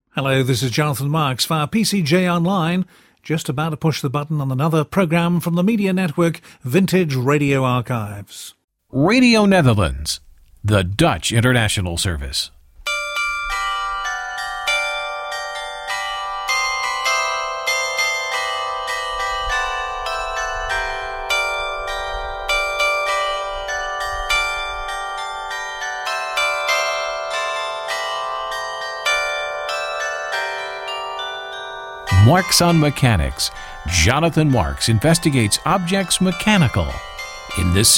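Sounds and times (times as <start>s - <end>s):
speech: 0.2s - 12.6s, 32.3s - 37.9s
bells pealing in a belfry: 12.9s - 37.9s.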